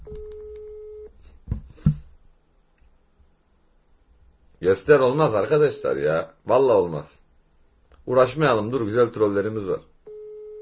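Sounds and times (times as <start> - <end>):
telephone call tone after a number is dialed: 0.0 - 1.1, 10.1 - 10.6
brief dull thumps: 1.4 - 2.2
speech: 4.6 - 7.2, 8.0 - 9.9.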